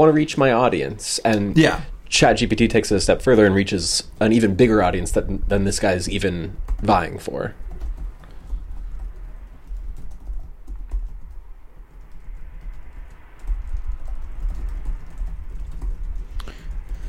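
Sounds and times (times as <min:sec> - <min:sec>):
speech: 0:00.0 - 0:07.6
low hum: 0:00.0 - 0:17.0
typing on a computer keyboard: 0:05.0 - 0:17.0.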